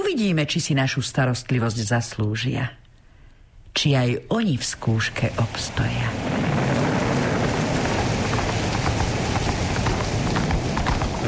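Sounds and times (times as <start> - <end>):
speech: 0.1 - 2.8, 3.8 - 6.6
heavy rain: 4.6 - 11.2
wind: 4.7 - 11.2
loud continuous storm roar: 5.1 - 11.2
horse's hooves clip-clopping over rocky ground carrying a rider: 5.2 - 11.2.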